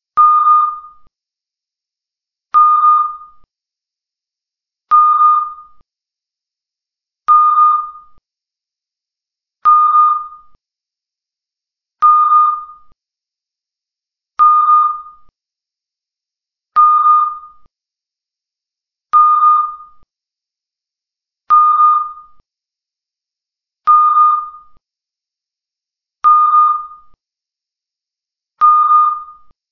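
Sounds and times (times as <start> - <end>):
beeps: 0.2 - 1.0, 2.6 - 3.4, 4.9 - 5.8, 7.3 - 8.2, 9.7 - 10.6, 12.0 - 12.9, 14.4 - 15.3, 16.8 - 17.6, 19.2 - 20.0, 21.5 - 22.4, 23.9 - 24.8, 26.2 - 27.2, 28.6 - 29.5.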